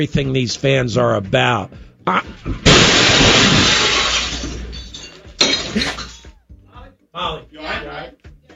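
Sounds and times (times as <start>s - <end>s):
speech: 0.0s - 3.8s, 5.7s - 6.1s
second impact: 2.5s - 5.8s
shattering debris: 2.5s - 6.2s
car crashing through a drywall wall into a sports radio studio office: 2.6s - 4.9s.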